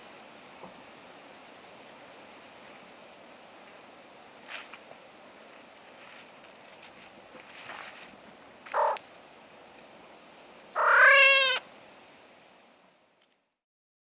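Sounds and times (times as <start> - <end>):
ruffed grouse: 8.7 - 9.0, 10.8 - 11.6.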